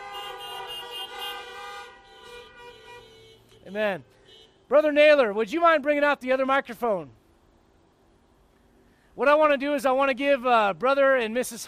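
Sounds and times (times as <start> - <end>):
car horns honking: 0.0 - 4.9
speech: 3.7 - 7.2, 9.2 - 11.6.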